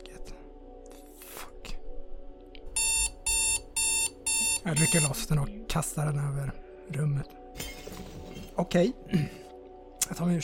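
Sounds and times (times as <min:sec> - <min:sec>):
alarm clock ringing in electronic bursts: 0:02.8 - 0:05.2
speech: 0:04.6 - 0:07.4, 0:08.6 - 0:09.4, 0:10.1 - 0:10.4.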